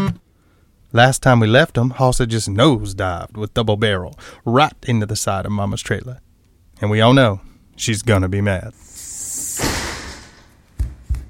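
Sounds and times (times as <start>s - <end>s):
speech: 0.9s - 6.2s, 6.8s - 8.9s
front door bursting open with a rushing whoosh: 9.0s - 10.6s.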